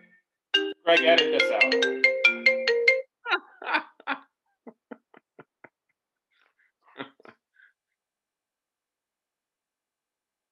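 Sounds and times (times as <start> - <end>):
phone ringtone playing a brief electronic melody: 0.0 - 3.1
speech: 0.9 - 2.2.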